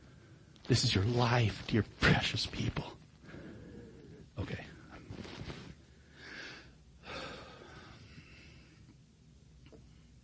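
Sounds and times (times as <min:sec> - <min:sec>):
speech: 0:00.7 - 0:03.0
labored wheezing breathing: 0:03.2 - 0:04.3, 0:05.5 - 0:08.9.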